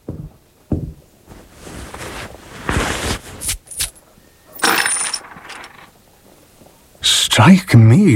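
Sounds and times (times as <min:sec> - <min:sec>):
gold coins clinking and jingling: 0:03.4 - 0:05.9
speech: 0:07.4 - 0:08.1.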